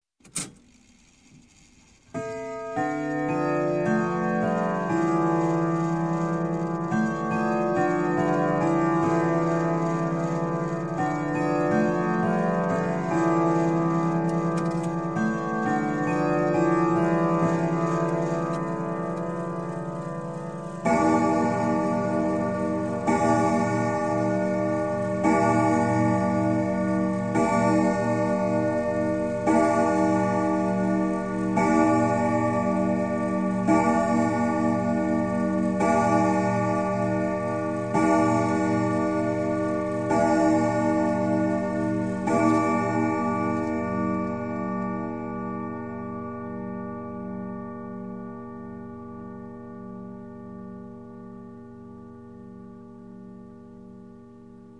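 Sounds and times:
grandfather clock chime strike: 0:02.2 - 0:54.7.

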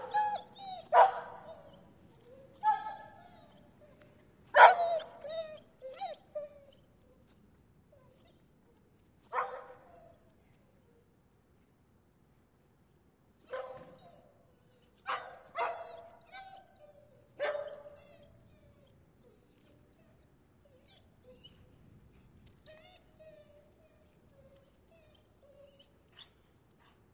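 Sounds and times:
shepherd dog yelping and whimpering: 0:00.0 - 0:07.0, 0:13.5 - 0:21.8, 0:22.6 - 0:26.4.

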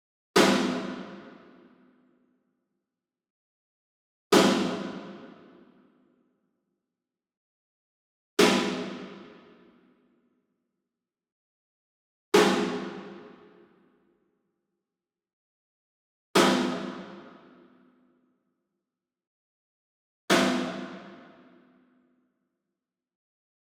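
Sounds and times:
single snare drum rim hit: 0:00.4 - 0:01.1, 0:04.4 - 0:05.2, 0:08.4 - 0:09.4, 0:12.4 - 0:13.2, 0:20.3 - 0:21.2.

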